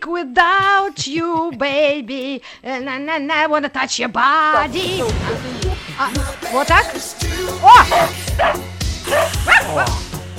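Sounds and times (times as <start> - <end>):
speech: 0.1 - 10.0
several dogs barking with sharp woofs and yips: 7.5 - 10.2.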